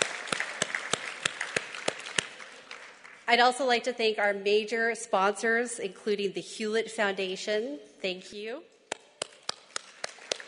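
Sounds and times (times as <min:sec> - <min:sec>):
audience applauding: 0:00.0 - 0:03.2, 0:09.4 - 0:10.4
one pair of hands clapping sharply: 0:00.0 - 0:03.2, 0:08.9 - 0:10.4
speech: 0:03.3 - 0:08.7.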